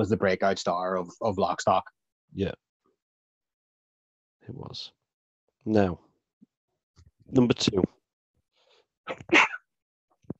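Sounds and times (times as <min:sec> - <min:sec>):
speech: 0:00.0 - 0:02.6, 0:04.5 - 0:05.0, 0:05.6 - 0:06.1, 0:07.3 - 0:08.0, 0:09.1 - 0:09.5
person sneezing: 0:09.1 - 0:09.6.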